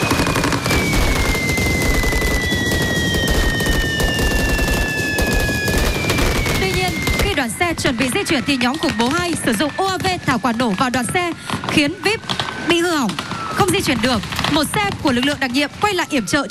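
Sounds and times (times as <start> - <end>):
automatic gunfire from special forces officers: 0.1 - 7.2
speech: 8.3 - 16.4.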